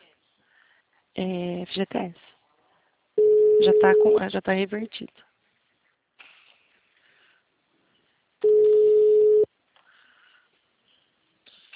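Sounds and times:
speech: 0:01.2 - 0:02.3, 0:03.6 - 0:05.3
telephone dial tone after a dropped phone call: 0:08.4 - 0:09.5.

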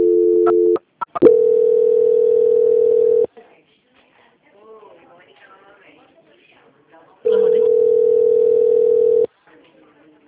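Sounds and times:
telephone tone during call transfer: 0:00.0 - 0:03.3, 0:07.3 - 0:09.3.

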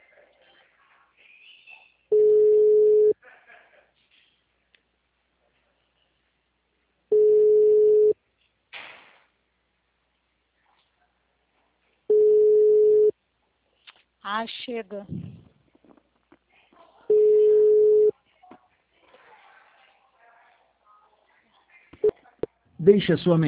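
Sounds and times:
ringback tone of an outgoing telephone call: 0:02.1 - 0:03.1, 0:07.1 - 0:08.2, 0:12.1 - 0:13.1, 0:17.1 - 0:18.1
speech: 0:14.3 - 0:15.5, 0:22.9 - 0:23.4.

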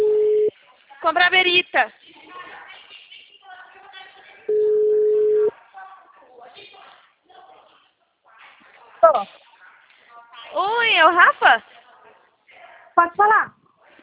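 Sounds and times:
telephone dialing tone: 0:00.0 - 0:00.5, 0:04.5 - 0:05.5
speech: 0:01.0 - 0:02.0, 0:09.1 - 0:09.4, 0:10.6 - 0:11.8, 0:13.0 - 0:13.6.

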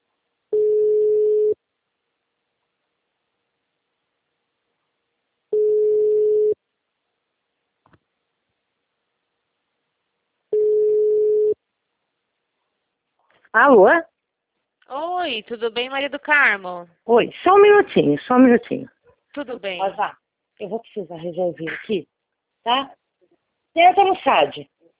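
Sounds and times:
unanswered telephone call ringback tones: 0:00.6 - 0:01.6, 0:05.5 - 0:06.6, 0:10.5 - 0:11.6
speech: 0:13.6 - 0:14.1, 0:14.9 - 0:23.0, 0:23.8 - 0:24.7.

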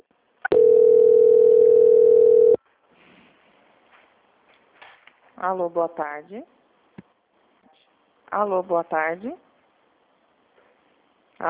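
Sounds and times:
telephone line tone during a call transfer: 0:00.5 - 0:02.6
speech: 0:05.4 - 0:06.6, 0:08.3 - 0:09.4.

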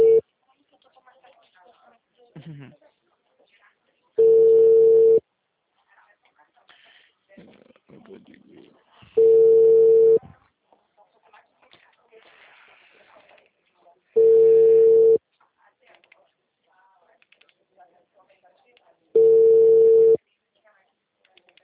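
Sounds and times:
telephone busy tone after a dropped call: 0:00.0 - 0:00.2, 0:04.2 - 0:05.2, 0:09.2 - 0:10.2, 0:14.2 - 0:15.2, 0:19.2 - 0:20.2.

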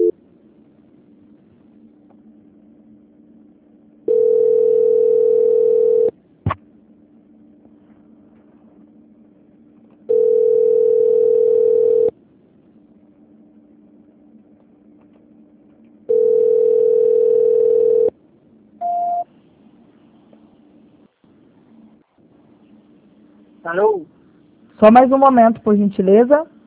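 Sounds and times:
telephone tone beeps while a call is being transferred: 0:04.1 - 0:06.1, 0:10.1 - 0:12.1, 0:16.1 - 0:18.1, 0:18.8 - 0:19.2
speech: 0:24.8 - 0:26.6.

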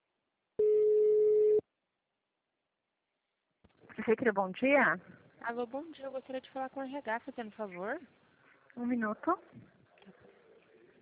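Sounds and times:
telephone line signal tone beep from an automated phone attendant: 0:00.6 - 0:01.6
speech: 0:04.1 - 0:08.2, 0:08.8 - 0:09.8.

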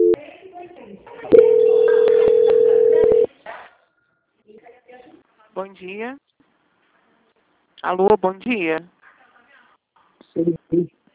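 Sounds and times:
telephone tone during a call transfer: 0:01.3 - 0:03.3
speech: 0:05.6 - 0:06.3, 0:07.8 - 0:09.0, 0:10.4 - 0:11.0.

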